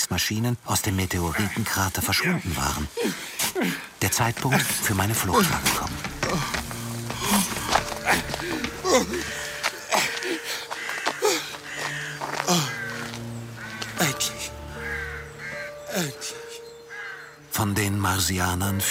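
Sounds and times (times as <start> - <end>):
speech: 0.1 - 6.7, 18.2 - 18.8
flock of crows cawing: 3.2 - 17.5.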